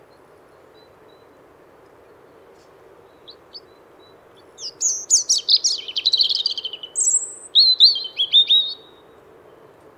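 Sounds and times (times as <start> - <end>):
European robin delivering a varied song: 4.6 - 9.0.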